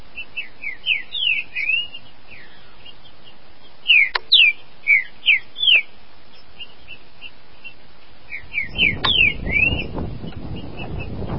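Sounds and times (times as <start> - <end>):
green-winged saltator singing sweet whistled notes: 0.1 - 11.3.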